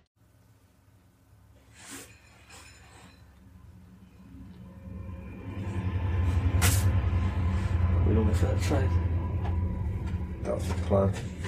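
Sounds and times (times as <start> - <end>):
faint metallic clinks from a train: 2.0 - 3.6
long train rolling by: 3.8 - 11.4
speech: 8.4 - 9.0, 10.6 - 11.4.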